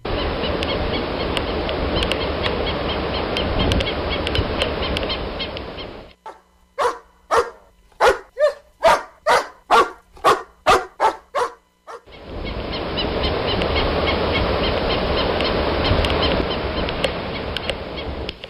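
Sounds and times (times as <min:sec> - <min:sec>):
roaring surf at a dog beach beside a coastal marsh: 0:00.0 - 0:06.1, 0:12.0 - 0:18.4
dog barking at a dog beach beside a coastal marsh: 0:06.3 - 0:12.1.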